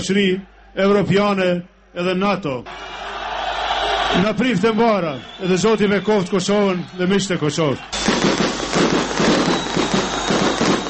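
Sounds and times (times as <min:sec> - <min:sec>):
speech: 0:00.0 - 0:03.0, 0:04.1 - 0:08.1
fireworks crackling and popping in celebration: 0:07.9 - 0:10.8.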